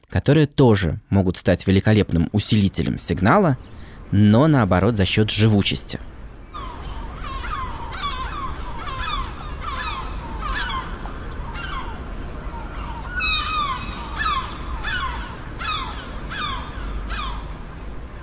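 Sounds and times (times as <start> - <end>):
speech: 0.2 - 6.1
low rumble: 0.9 - 18.2
gull colony calling on Atlantic coast: 4.8 - 17.6.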